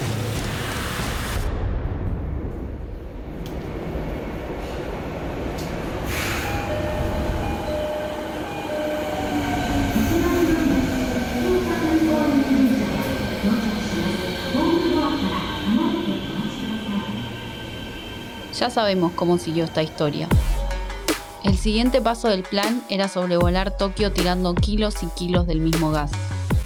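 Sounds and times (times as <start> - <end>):
subway train running along the track at rush hour: 0.0 - 20.5
subway train motors whining: 4.5 - 21.1
speech: 18.6 - 20.4, 21.6 - 26.2.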